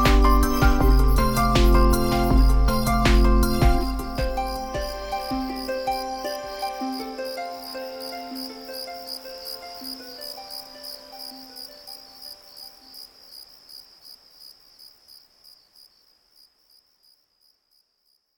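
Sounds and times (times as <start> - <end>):
soft sustained musical tones: 0.0 - 13.0
cicada buzzing call with high rasping trill: 0.0 - 14.6.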